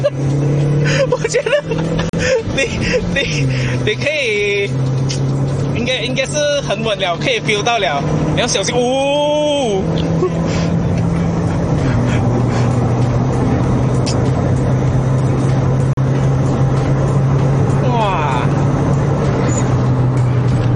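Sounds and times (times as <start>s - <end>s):
car engine droning: 0.0s - 20.7s
tyres roaring on the road: 0.0s - 20.7s
speech: 2.6s - 5.0s, 5.9s - 10.0s
person exclaiming: 17.8s - 18.6s.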